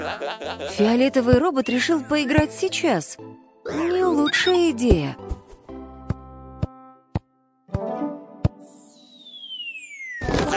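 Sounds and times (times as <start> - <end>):
laughter: 0.0 - 1.1
speech: 0.2 - 5.3
ball bouncing: 2.3 - 2.6, 4.9 - 8.6
falling whistle: 8.6 - 10.5.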